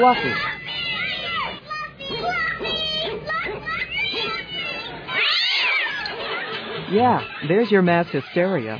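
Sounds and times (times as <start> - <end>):
speech: 0.0 - 0.5, 6.9 - 8.7
sharp shrill cry: 0.0 - 7.5
noisy commotion of voices: 0.0 - 8.7
laughter: 5.0 - 8.7
cat yowling and screeching while chased by dog: 5.1 - 6.4.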